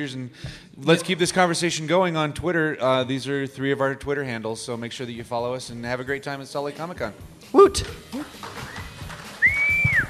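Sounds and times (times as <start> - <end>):
speech: 0.0 - 8.5
audience member whistling at a comic convention panel: 8.7 - 10.0.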